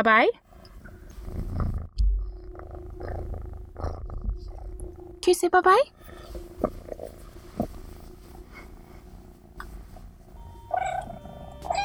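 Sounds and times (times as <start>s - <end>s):
speech: 0.0s - 0.4s, 5.2s - 7.2s
cat purring: 1.1s - 11.8s
low thump: 2.0s - 5.3s.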